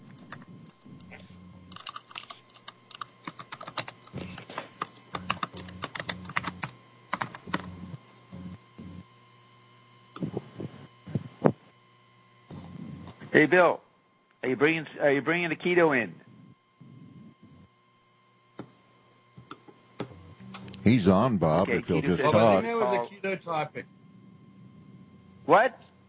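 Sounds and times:
steady low electrical hum: 0.0s - 26.0s
typing on a computer keyboard: 1.7s - 4.0s, 4.8s - 7.7s
speech: 13.4s - 13.8s, 14.4s - 16.2s, 21.0s - 24.0s, 25.5s - 25.8s.

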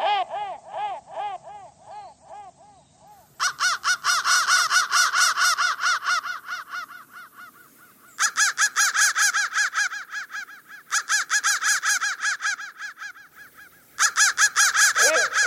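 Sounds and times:
crow cawing: 0.0s - 15.4s.

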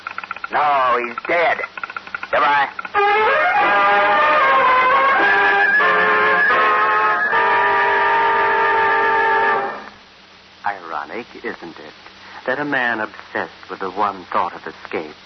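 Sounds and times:
speech: 0.5s - 1.7s, 2.3s - 4.1s, 11.1s - 15.2s
sustained train whistle blaring a chord of steady tones: 3.0s - 9.9s.

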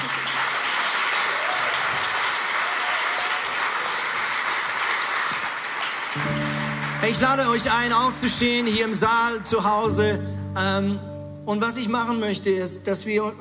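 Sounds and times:
sustained applause from a large crowd in a hall: 0.0s - 9.4s
speech: 7.0s - 13.3s.

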